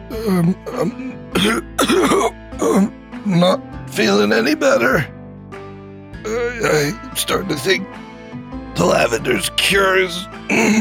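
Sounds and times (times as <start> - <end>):
man coughing and clearing his throat: 0.2 - 2.9, 10.5 - 10.7
speech: 0.2 - 5.2, 6.2 - 8.0, 8.8 - 10.7.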